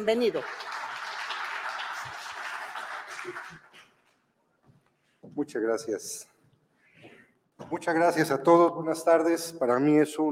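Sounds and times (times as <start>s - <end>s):
speech: 0.0s - 0.7s, 5.4s - 6.3s, 7.7s - 10.2s
audience applauding a speaker: 0.0s - 4.2s.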